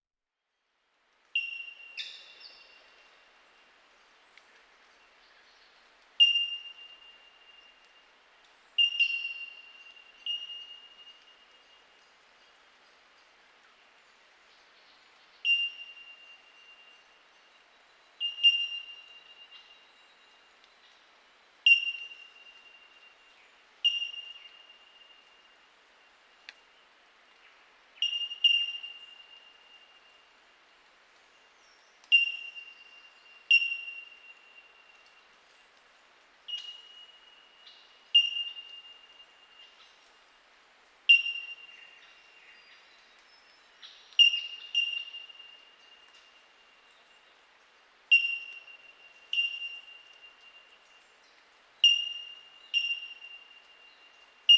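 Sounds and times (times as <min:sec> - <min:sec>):
bell miner calling: 0:01.4 - 0:02.8, 0:06.2 - 0:07.2, 0:08.8 - 0:11.3, 0:15.4 - 0:16.9, 0:18.2 - 0:19.7, 0:21.7 - 0:22.7, 0:23.8 - 0:25.0, 0:28.0 - 0:29.6, 0:32.0 - 0:34.9, 0:36.5 - 0:39.8, 0:41.1 - 0:42.8, 0:43.8 - 0:45.6, 0:48.1 - 0:50.2, 0:51.8 - 0:53.6.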